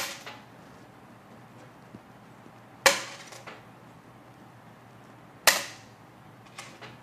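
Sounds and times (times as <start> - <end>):
copper-rich coin dropped onto a hard surface: 2.9 - 3.6.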